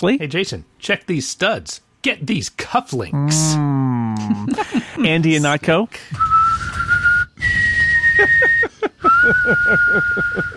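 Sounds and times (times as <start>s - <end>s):
speech: 0.0s - 6.7s, 8.2s - 10.5s
laughter: 4.1s - 5.6s, 8.0s - 10.5s
person whistling casually: 6.1s - 10.5s.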